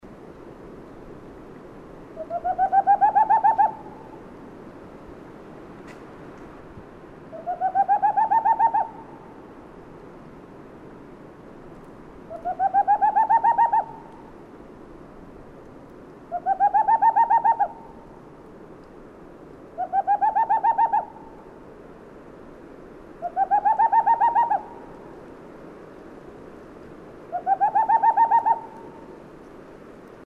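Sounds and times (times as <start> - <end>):
Tengmalm's Owl Aegithalos funereus calling in Central Finland: 2.2 - 4.2, 7.3 - 9.4, 12.3 - 14.4, 16.3 - 18.0, 19.8 - 21.5, 23.2 - 25.0, 27.3 - 29.2.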